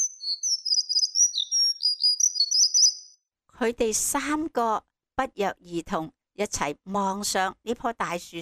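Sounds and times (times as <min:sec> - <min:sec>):
small bird chirping and twittering in a very tall tree: 0:00.0 - 0:03.2
speech: 0:03.6 - 0:08.4.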